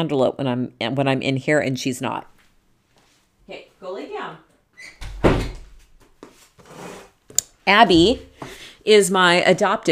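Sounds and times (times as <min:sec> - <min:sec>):
speech: 0:00.0 - 0:02.3, 0:03.5 - 0:04.4, 0:07.7 - 0:09.9
door thumping shut: 0:05.0 - 0:05.7.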